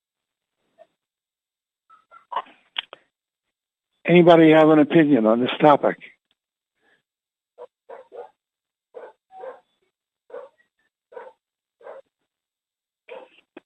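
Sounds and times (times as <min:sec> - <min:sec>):
speech: 0:04.1 - 0:06.1
dog barking: 0:07.6 - 0:08.4, 0:09.0 - 0:09.7, 0:10.3 - 0:12.1, 0:13.1 - 0:13.4.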